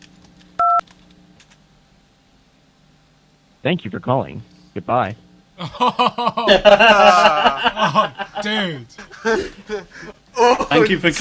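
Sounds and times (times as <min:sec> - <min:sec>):
touch-tone keypad beep on a PBX telephone line: 0:00.6 - 0:00.8
speech: 0:03.6 - 0:10.1, 0:10.7 - 0:11.1
laughter: 0:05.6 - 0:10.7.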